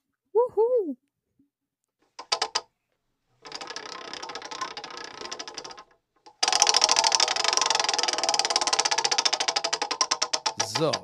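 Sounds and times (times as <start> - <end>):
speech: 0.5 - 1.1, 10.8 - 11.0
prize wheel spinning with ratchet clicking: 2.2 - 2.7, 3.4 - 11.0.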